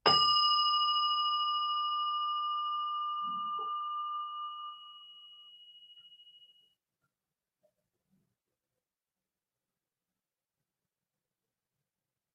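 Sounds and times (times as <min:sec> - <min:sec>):
bell struck with a clear bright ring: 0:00.1 - 0:06.6.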